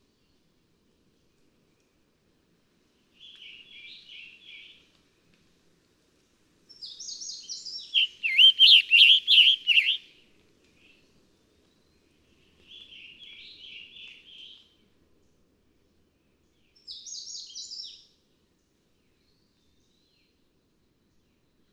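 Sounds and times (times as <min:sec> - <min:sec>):
scarlet tanager song: 0:07.0 - 0:10.0.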